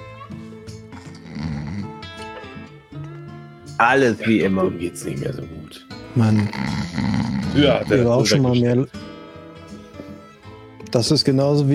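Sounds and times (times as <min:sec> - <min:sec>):
man snoring loudly: 0:00.7 - 0:02.8, 0:06.0 - 0:08.4
speech: 0:03.8 - 0:09.0, 0:10.9 - 0:11.7.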